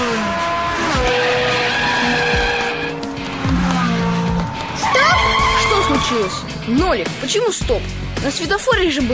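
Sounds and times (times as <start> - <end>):
tires squealing and skidding through turns and hard braking: 0.0 - 7.2
car engine revving in a computer driving game: 0.0 - 9.1
speech: 6.1 - 9.1.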